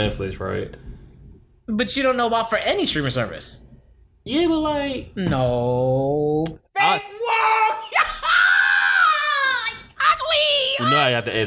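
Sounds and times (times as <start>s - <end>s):
speech: 0.0s - 0.9s, 1.7s - 3.6s, 4.2s - 7.7s, 10.8s - 11.4s
person yelling loudly in high-pitched bursts: 6.8s - 11.2s.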